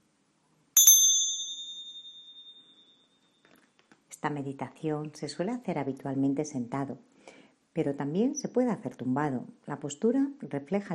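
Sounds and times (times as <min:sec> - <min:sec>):
small meditation bell struck in a guided mindfulness meditation: 0:00.8 - 0:03.4
speech: 0:04.2 - 0:07.1, 0:07.8 - 0:10.9.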